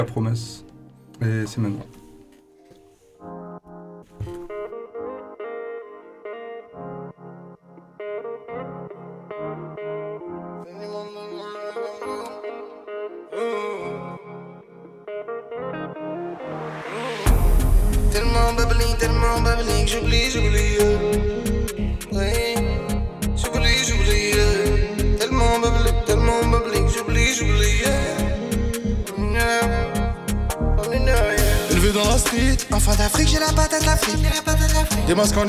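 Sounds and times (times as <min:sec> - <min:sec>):
speech: 0:00.0 - 0:02.0, 0:33.0 - 0:35.4
French rap track with heavily effected chorus-laden synth beat: 0:17.3 - 0:35.4.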